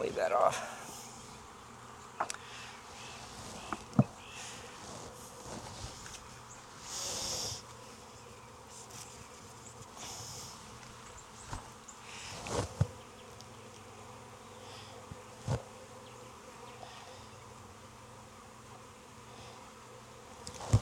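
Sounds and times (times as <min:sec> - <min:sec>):
many honey bees swarming around an open hive: 0:00.0 - 0:20.8
speech: 0:00.1 - 0:00.8
rustling: 0:02.8 - 0:08.1, 0:08.7 - 0:13.0.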